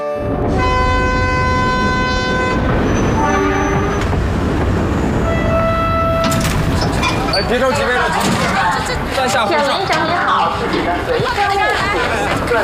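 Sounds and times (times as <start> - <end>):
long sustained horn-like tones: 0.2 - 4.1, 5.2 - 6.4
train arriving at a railway station: 0.2 - 12.6
speech: 7.5 - 12.6.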